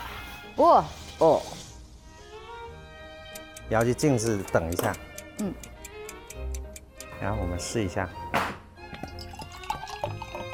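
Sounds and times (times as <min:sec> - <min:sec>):
speech: 0:00.6 - 0:01.6, 0:03.7 - 0:05.7, 0:07.2 - 0:08.6
wine fizzing and bubbling after gas is pumped into it: 0:08.9 - 0:10.5.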